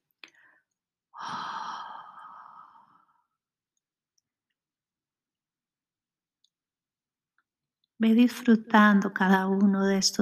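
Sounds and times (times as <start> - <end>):
slow exhale during guided meditation breathing: 1.2 - 3.3
speech: 8.0 - 10.2.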